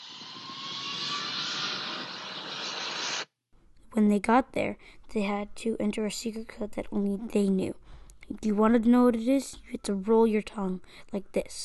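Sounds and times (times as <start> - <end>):
airplane in flight with jet engine roar: 0.0 - 3.2
speech: 4.0 - 11.6.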